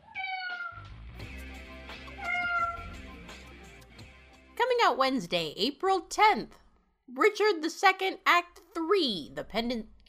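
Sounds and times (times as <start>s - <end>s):
kittens meowing: 0.0s - 0.8s, 2.1s - 3.0s
speech: 4.8s - 10.0s.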